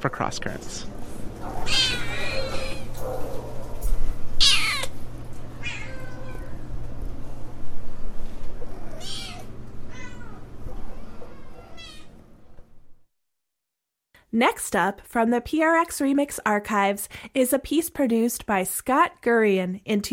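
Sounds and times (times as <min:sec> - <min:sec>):
speech: 0:00.0 - 0:02.0, 0:14.3 - 0:20.1
cat meowing: 0:01.6 - 0:03.0, 0:04.4 - 0:05.0, 0:05.6 - 0:06.6, 0:08.8 - 0:12.2.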